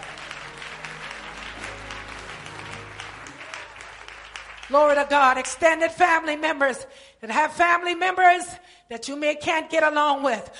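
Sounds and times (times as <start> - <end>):
audience clapping hands: 0.0 - 6.0
speech: 4.7 - 10.5.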